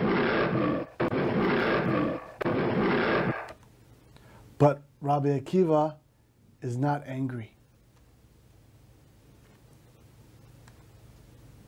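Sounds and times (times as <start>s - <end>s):
lion roaring: 0.0s - 3.6s
speech: 4.6s - 6.0s, 6.6s - 7.6s.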